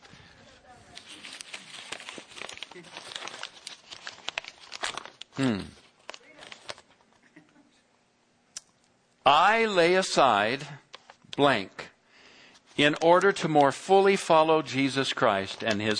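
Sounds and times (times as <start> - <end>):
many sheets of paper being crumpled: 0.8 - 7.2, 12.6 - 13.8, 14.7 - 15.9
speech: 5.4 - 5.8, 9.3 - 10.8, 11.4 - 11.8, 12.8 - 15.9.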